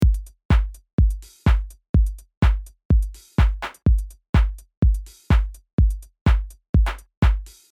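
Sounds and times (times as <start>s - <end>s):
drums: 0.0s - 7.7s.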